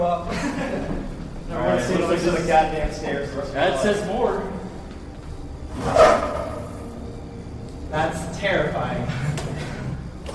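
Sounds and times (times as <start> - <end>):
laughter: 0.0 - 2.4, 9.0 - 10.0
speech: 1.9 - 4.6, 5.8 - 6.2
video game door opening with a scraping slide: 5.7 - 6.8.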